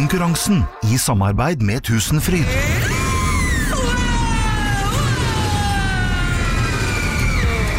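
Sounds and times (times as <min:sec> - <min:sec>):
speech: 0:00.1 - 0:02.8
people screaming on a roller coaster at an amusement park: 0:02.4 - 0:07.7.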